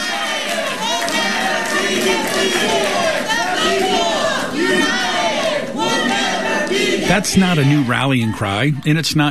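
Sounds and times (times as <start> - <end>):
large crowd chanting and shouting in unison after a City Council vote: 0.0 - 9.2
speech: 2.4 - 3.0, 7.1 - 9.2.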